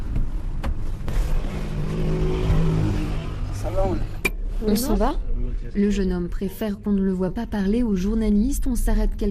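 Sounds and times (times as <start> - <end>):
car engine rumbling and revving as the vehicle pulls away: 0.8 - 5.1
speech: 4.7 - 9.2.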